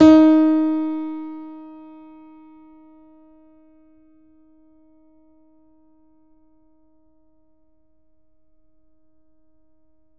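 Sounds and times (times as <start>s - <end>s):
grand piano note D#3 ff: 0.0s - 3.2s.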